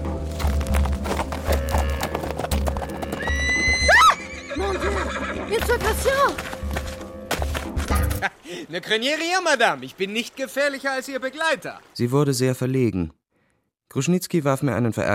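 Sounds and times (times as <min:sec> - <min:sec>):
horse hooves clip-clopping: 0:00.0 - 0:08.3
horse snorting neighs: 0:00.8 - 0:03.3
ridden horse whinnying after being whipped: 0:01.4 - 0:05.6
speech: 0:08.6 - 0:13.2, 0:13.9 - 0:15.1.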